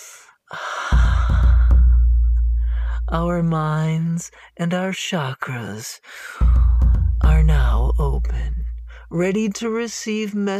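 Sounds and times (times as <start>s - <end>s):
person inhaling deeply over freshly ground spices in a mortar: 0.0s - 3.1s, 8.8s - 9.1s
low steady droning tone: 1.0s - 4.4s, 6.4s - 9.8s
speech: 3.1s - 6.6s, 7.2s - 10.5s.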